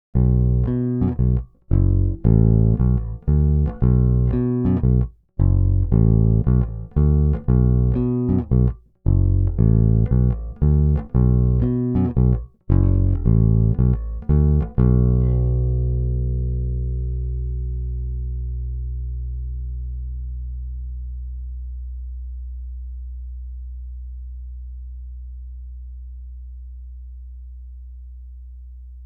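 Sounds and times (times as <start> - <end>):
guitar played between the neck and the pickup: 0.2 - 19.5.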